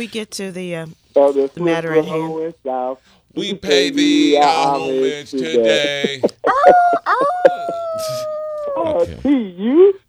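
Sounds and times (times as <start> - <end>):
speech: 0.0 - 7.3, 8.0 - 10.0
laughter: 3.4 - 9.4
dog giving short yelps: 6.2 - 8.9
dog howling in a long wavering cry and whine: 6.4 - 9.0.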